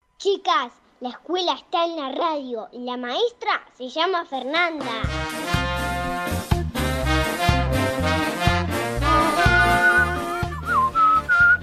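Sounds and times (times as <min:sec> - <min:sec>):
speech: 0:00.2 - 0:05.6
steady backing music: 0:04.8 - 0:11.6
person whistling a short melody: 0:09.4 - 0:11.6.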